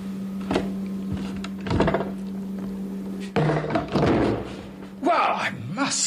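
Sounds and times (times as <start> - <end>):
steady low electrical hum: 0.0 - 6.0
door shoved closed with solid thuds: 3.4 - 4.6.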